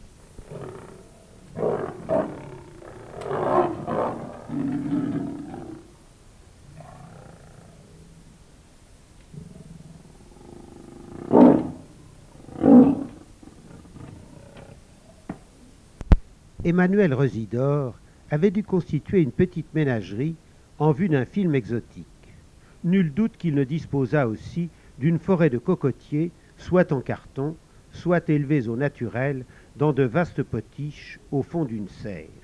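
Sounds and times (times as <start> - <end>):
lion grunting breaths: 0.3 - 5.9, 9.3 - 14.9
lion roaring: 0.4 - 6.0, 6.7 - 8.4, 9.3 - 15.0
speech: 16.6 - 22.1, 22.8 - 32.4.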